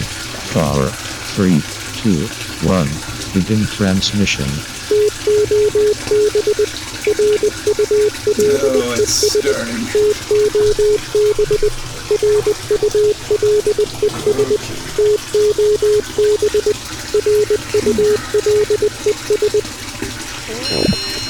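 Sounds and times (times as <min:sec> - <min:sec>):
tap running steadily: 0:00.0 - 0:21.2
speech: 0:00.6 - 0:04.8, 0:05.4 - 0:19.8, 0:20.5 - 0:21.2
loud electronic beeps in short bursts: 0:04.9 - 0:19.6, 0:20.5 - 0:21.2.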